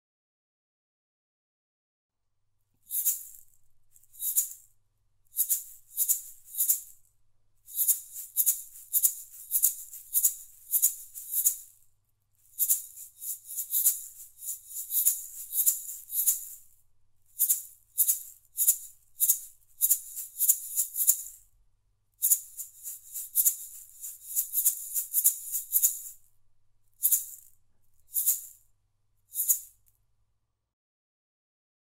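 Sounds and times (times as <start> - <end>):
maracas shaking: 2.8 - 4.7, 5.3 - 21.4, 22.2 - 26.3, 27.0 - 28.6, 29.3 - 29.9.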